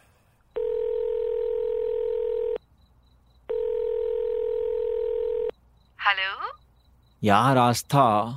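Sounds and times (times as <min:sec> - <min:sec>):
telephone ringback tones on an outgoing call: 0:00.6 - 0:02.6, 0:03.5 - 0:05.5
speech: 0:06.2 - 0:06.6, 0:07.2 - 0:08.3.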